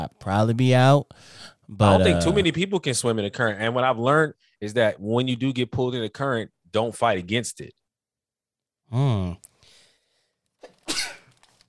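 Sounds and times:
speech: 0.0 - 7.8, 8.9 - 9.5
single loud sneeze: 10.6 - 11.5.

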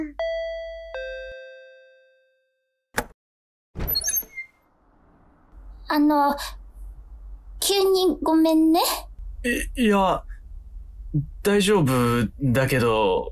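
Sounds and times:
two-tone intercom doorbell chiming ding dong: 0.2 - 2.6
speech: 5.9 - 6.6, 7.7 - 10.3, 11.1 - 13.2.

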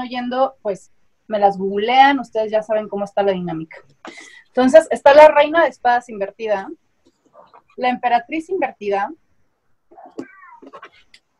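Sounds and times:
speech: 0.0 - 6.8, 7.8 - 9.2
cat meowing: 10.0 - 11.0.

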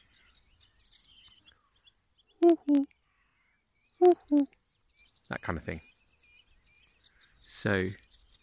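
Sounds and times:
faint songbirds chirping: 0.0 - 8.4
common cuckoo calling its two-note call: 2.4 - 2.9, 4.0 - 4.5
speech: 2.4 - 3.0, 4.0 - 4.6, 5.3 - 5.9, 7.6 - 8.0.

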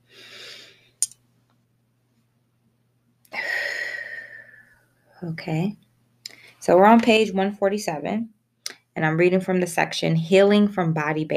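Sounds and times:
person taking deep breaths: 0.0 - 1.0, 3.3 - 4.8
speech: 5.2 - 5.8, 6.6 - 8.4, 9.0 - 11.3.

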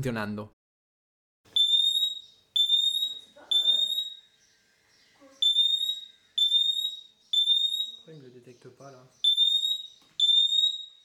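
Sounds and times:
speech: 0.0 - 0.6, 8.1 - 9.2
smoke detector siren beeping loud and piercing: 1.5 - 4.2, 5.4 - 8.0, 9.2 - 11.0.

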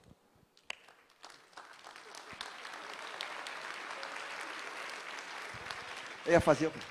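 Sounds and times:
audience applauding: 0.7 - 6.8
speech: 6.3 - 6.8.

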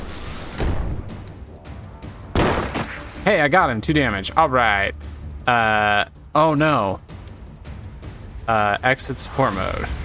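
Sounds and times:
busy noisy video game background: 0.0 - 10.0
video game gunshot blasts: 2.3 - 3.1
speech: 3.3 - 7.1, 8.5 - 10.0.

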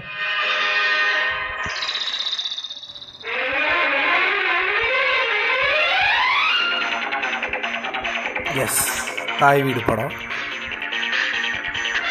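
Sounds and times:
energetic Tamil film song with distorted electronic synth lines: 0.0 - 12.0
speech: 8.6 - 10.3.

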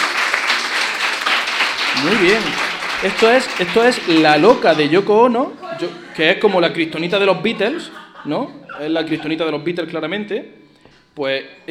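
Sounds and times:
small audience applauding: 0.0 - 5.9
laughter: 1.9 - 9.8
speech: 2.0 - 10.6, 11.2 - 11.7.

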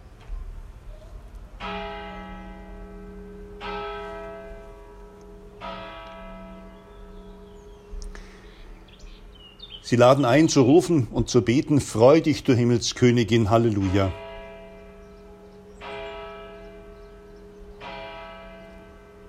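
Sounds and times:
faint outdoor ambience: 0.0 - 19.2
church bells ringing: 1.6 - 19.2
speech: 9.9 - 14.2.

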